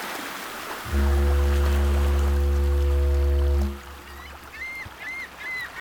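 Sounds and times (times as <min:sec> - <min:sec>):
foghorn on a beach: 0:00.8 - 0:04.5
seagulls on a beach: 0:04.1 - 0:05.7.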